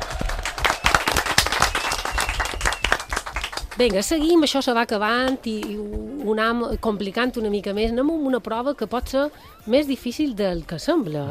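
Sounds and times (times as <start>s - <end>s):
audience applause with many hands clapping: 0.0s - 3.8s
speech: 3.8s - 11.3s.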